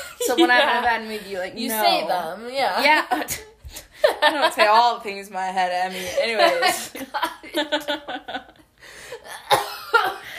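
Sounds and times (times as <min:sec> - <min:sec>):
speech: 0:00.3 - 0:08.4
person coughing: 0:09.3 - 0:10.3.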